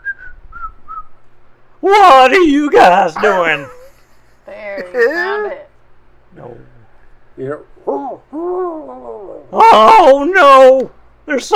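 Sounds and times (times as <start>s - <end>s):
person whistling a short tune of sustained notes: 0.0s - 1.1s
low rumbling noise: 0.0s - 11.5s
speech: 1.8s - 3.8s, 7.4s - 11.5s.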